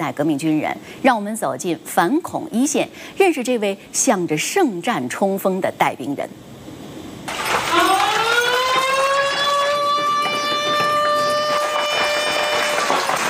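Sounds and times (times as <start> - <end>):
speech: 0.0 - 6.5
alarm siren wailing: 7.4 - 13.2.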